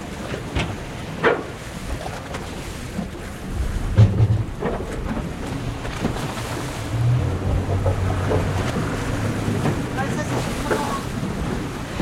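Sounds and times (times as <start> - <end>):
water washing around a boat moored at a quay in a harbour: 0.0 - 12.0
wind aboard a boat moored at a harbour quay: 0.0 - 12.0
low droning hum: 3.2 - 9.7.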